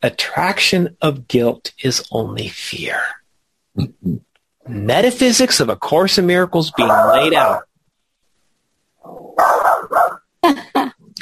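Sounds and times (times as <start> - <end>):
speech: 0.0 - 3.2, 3.8 - 7.7, 9.0 - 11.2
dog barking: 9.3 - 10.2.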